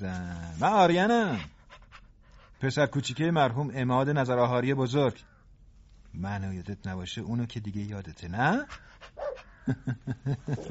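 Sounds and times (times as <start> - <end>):
speech: 0.0 - 1.5, 2.6 - 5.3, 6.1 - 10.6
old dog barking: 9.2 - 9.5.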